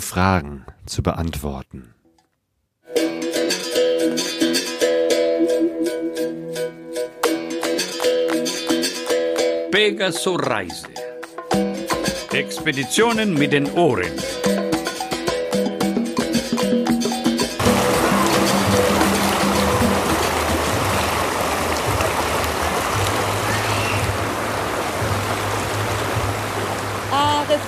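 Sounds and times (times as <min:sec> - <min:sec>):
speech: 0:00.1 - 0:02.0, 0:09.8 - 0:11.0, 0:12.4 - 0:14.4
music: 0:02.8 - 0:24.2, 0:24.9 - 0:27.6
small waterfall rushing in a hot river: 0:17.6 - 0:27.6.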